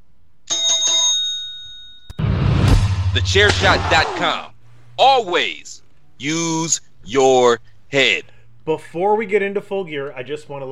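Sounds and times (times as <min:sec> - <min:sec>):
bright metallic bell being struck: 0:00.5 - 0:02.2
burst of broadband noise: 0:02.7 - 0:04.3
speech: 0:03.1 - 0:10.7.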